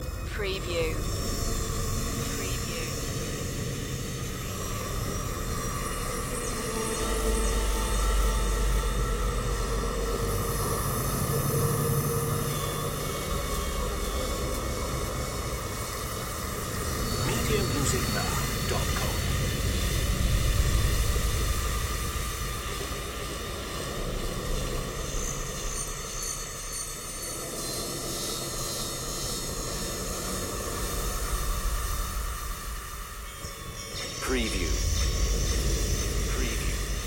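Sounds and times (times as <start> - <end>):
ghost buzz ambience: 0.0 - 37.0.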